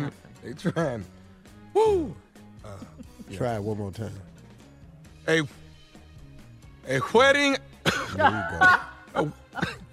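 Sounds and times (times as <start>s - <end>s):
laughter: 0.0s - 1.1s, 2.6s - 3.8s, 7.9s - 9.9s
speech: 0.1s - 4.3s, 5.3s - 5.6s, 6.8s - 9.8s
person coughing: 7.8s - 8.9s, 9.5s - 9.9s.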